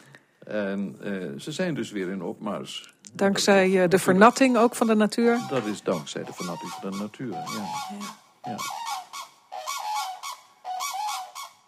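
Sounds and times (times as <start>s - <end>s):
speech: 0.5s - 9.0s
common cranes trumpeting and bugling: 4.1s - 11.6s.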